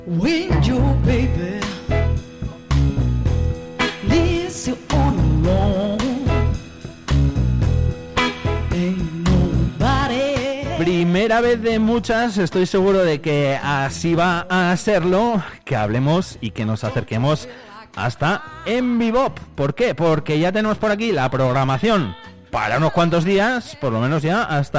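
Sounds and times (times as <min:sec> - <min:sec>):
song on the radio with pulsing beat and heavy bass: 0:00.1 - 0:02.9, 0:03.8 - 0:07.3, 0:08.1 - 0:12.7, 0:16.6 - 0:20.2, 0:21.4 - 0:24.7
speech: 0:11.4 - 0:24.7.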